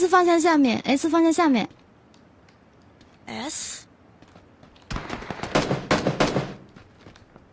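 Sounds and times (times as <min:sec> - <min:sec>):
speech: 0:00.0 - 0:01.8, 0:03.3 - 0:03.9
gunfire in a shooting video game: 0:04.8 - 0:06.9.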